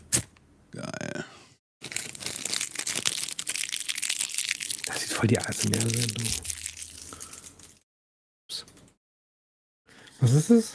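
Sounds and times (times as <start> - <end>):
protective plastic foil peeled off a car door-handle ashtray: 1.8 - 7.8
speech: 5.2 - 6.5, 10.2 - 10.7.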